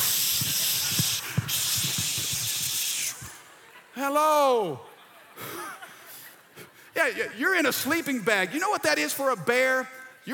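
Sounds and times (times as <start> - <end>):
bear spray blasting from a canister: 0.0 - 3.4
speech: 4.0 - 5.5, 7.0 - 10.3.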